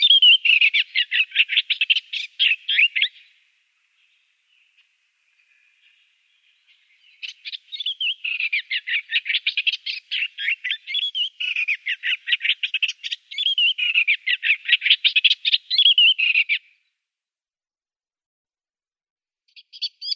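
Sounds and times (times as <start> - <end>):
Eastern olivaceous warbler scratchy chattering song: 0.0 - 3.2, 7.2 - 16.6.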